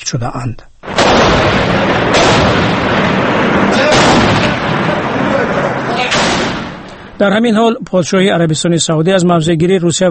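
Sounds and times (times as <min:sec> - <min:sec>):
speech: 0:00.1 - 0:02.7, 0:03.7 - 0:04.4, 0:07.2 - 0:10.1
heavy tank artillery shelling: 0:00.8 - 0:07.5
sharp shell and shrapnel blasts: 0:00.8 - 0:07.5.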